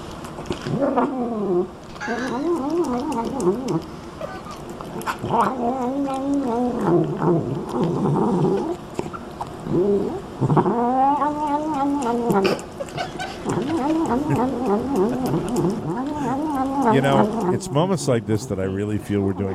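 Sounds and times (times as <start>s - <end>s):
speech: 0.6s - 4.0s, 5.2s - 8.8s, 9.7s - 19.5s
cat moaning and yowling while eating sweet corn: 0.6s - 8.8s, 9.7s - 12.6s, 13.4s - 17.6s.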